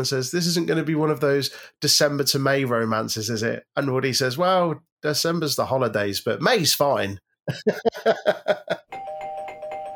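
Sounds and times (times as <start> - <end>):
speech: 0.0 - 8.6
laughter: 7.5 - 8.9
bright doorbell chime notes marking a trivia section: 8.9 - 9.9.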